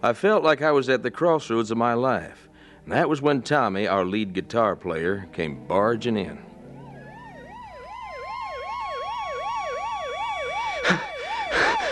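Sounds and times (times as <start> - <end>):
speech: 0.0 - 6.5
ambulance siren wailing: 6.0 - 11.9.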